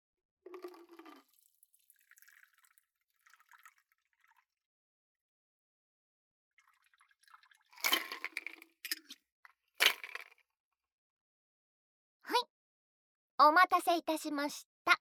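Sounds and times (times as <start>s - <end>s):
sidecar cocktail being poured into a glass: 0.5s - 4.4s, 6.6s - 9.1s
speech: 13.4s - 14.9s.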